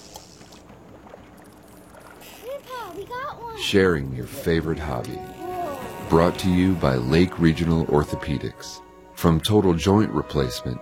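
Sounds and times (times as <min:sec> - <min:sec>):
brief water splashes: 0:00.0 - 0:07.0
small boat bumping against a dock: 0:00.0 - 0:08.0
water sloshing and knocking against a small boat hull: 0:00.0 - 0:08.0
speech: 0:02.6 - 0:05.4, 0:06.1 - 0:10.7.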